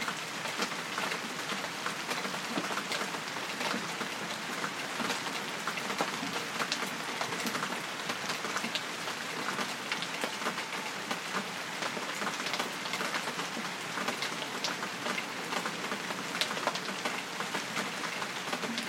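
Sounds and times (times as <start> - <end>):
steady rain pattering on hard surfaces in Antibes: 0.0 - 18.8.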